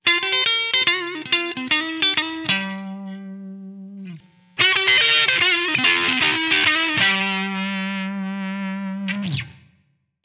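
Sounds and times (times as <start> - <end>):
blues on Telecaster electric guitar: 0.0 - 9.8.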